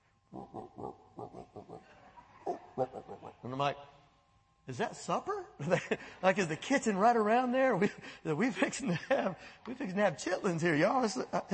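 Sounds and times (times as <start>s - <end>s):
pig grunting in a roofed shelter: 0.3s - 3.5s
speech: 2.8s - 3.9s, 4.7s - 11.5s.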